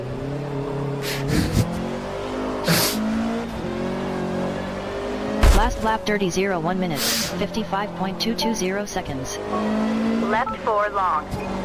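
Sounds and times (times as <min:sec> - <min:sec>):
race car engine roaring in a driving video game: 0:00.0 - 0:11.6
speech: 0:05.6 - 0:11.6.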